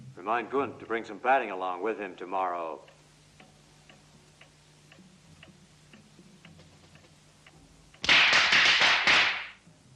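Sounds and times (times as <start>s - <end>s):
speech: 0.2s - 3.0s
firecrackers popping in the distance: 8.0s - 9.6s.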